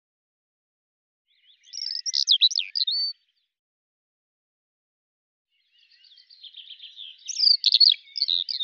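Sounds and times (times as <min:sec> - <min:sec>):
Eurasian skylark song of rapid high chirping and trilling: 0:01.3 - 0:03.6, 0:05.5 - 0:08.6.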